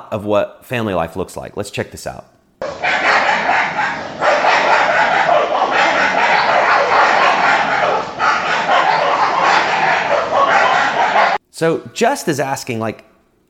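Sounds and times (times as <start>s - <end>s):
speech: 0.1s - 2.4s, 11.6s - 13.1s
several dogs barking and yipping at each other: 2.6s - 11.4s.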